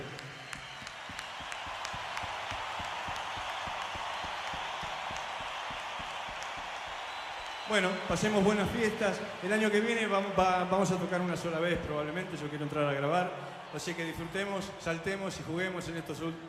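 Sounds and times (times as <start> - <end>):
large crowd applauding at a band's concert: 0.0 - 16.4
speech: 7.7 - 16.4.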